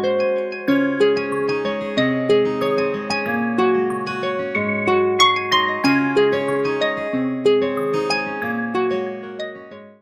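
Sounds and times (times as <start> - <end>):
gentle morning alarm ringtone: 0.2 - 9.7.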